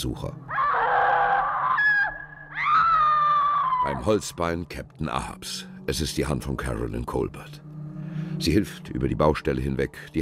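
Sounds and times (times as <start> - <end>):
speech: 0.0 - 0.5, 3.9 - 7.6, 8.2 - 10.1
shrill wavering scream effect echoing through an old building: 0.5 - 4.1.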